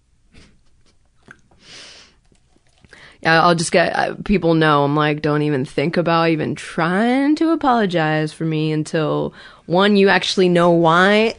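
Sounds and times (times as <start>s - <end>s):
person sipping water: 1.2s - 3.2s
speech: 3.2s - 11.3s.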